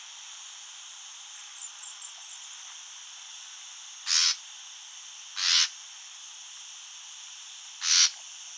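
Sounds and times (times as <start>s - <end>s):
common nightingale Luscinia megarhynchos rasping calls: 7.8s - 8.2s.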